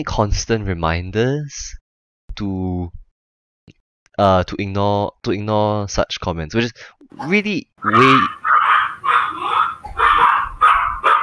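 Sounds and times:
speech: 0.0 - 1.8, 2.4 - 3.0, 4.2 - 8.4
male pet dog barking during an online voice call: 7.2 - 11.2.

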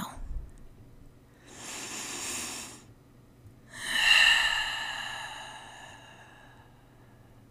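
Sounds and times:
deep breath in and out: 1.3 - 2.9, 3.6 - 7.4.

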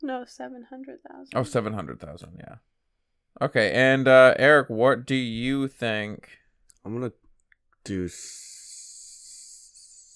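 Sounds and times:
speech: 0.0 - 2.8, 3.4 - 7.2, 7.8 - 8.5
person hissing like a snake: 8.1 - 10.1.

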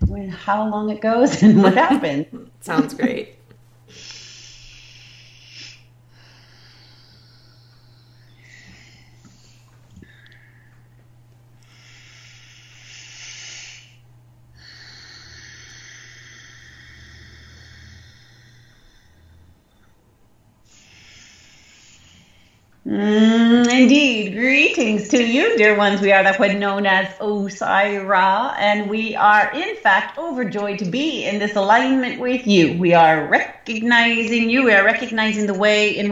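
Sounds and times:
low steady hum: 0.0 - 36.0
speech: 0.2 - 4.1, 23.9 - 36.0
laughter: 1.2 - 3.4
slow deep breathing before a channeling session: 3.4 - 23.4.

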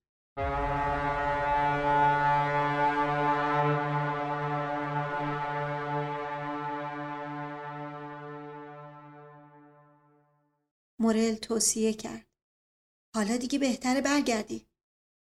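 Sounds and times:
faint distant bugle-like warning horn: 0.4 - 10.1
speech: 11.1 - 12.3, 13.2 - 14.7.

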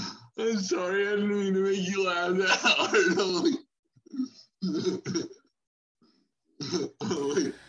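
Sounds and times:
speech: 0.4 - 5.4
raspy throaty coughs: 2.8 - 3.6, 4.6 - 5.4, 6.6 - 7.5.

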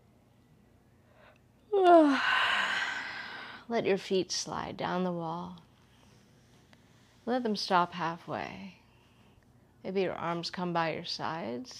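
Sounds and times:
person yawning: 1.7 - 3.5
speech: 1.8 - 2.4, 3.7 - 5.6, 7.2 - 8.8, 9.8 - 11.7.

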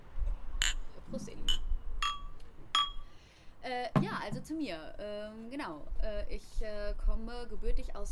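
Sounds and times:
speech: 1.1 - 1.4, 3.7 - 8.1
glasses clinking in a toast: 1.5 - 3.1.

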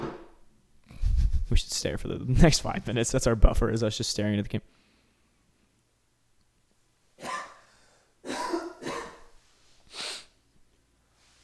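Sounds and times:
speech: 1.5 - 4.8
short explosive sneezes: 7.2 - 7.7, 8.3 - 9.3.

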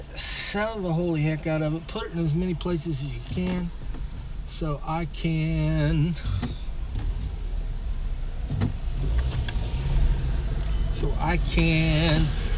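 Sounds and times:
road rumble: 0.0 - 12.5
speech: 0.2 - 3.8, 4.5 - 6.6, 11.0 - 12.5
car engine accelerating while pulling out into traffic: 3.1 - 12.5.

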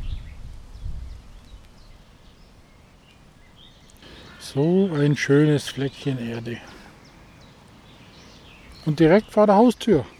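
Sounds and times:
faint bird chirps by the water: 0.0 - 9.4
steady low outdoor rumble by the water: 1.6 - 9.1
speech: 4.5 - 6.7, 8.9 - 10.1.

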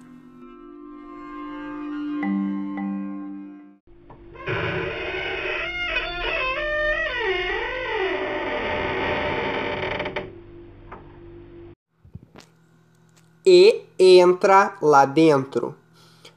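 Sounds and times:
broken half-open door creaking open: 3.9 - 11.4
speech: 13.5 - 15.8.

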